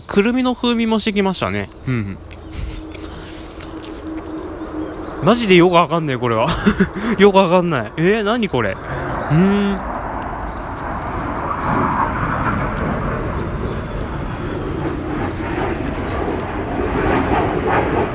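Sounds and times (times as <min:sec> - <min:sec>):
airplane roar passing overhead: 0:00.0 - 0:18.1
speech: 0:00.2 - 0:02.7, 0:05.2 - 0:09.9
laughter: 0:01.9 - 0:02.8, 0:06.4 - 0:07.6.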